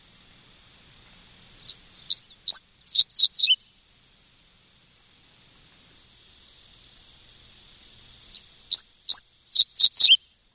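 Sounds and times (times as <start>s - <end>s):
dickcissel singing: 1.7s - 3.6s, 9.5s - 10.2s.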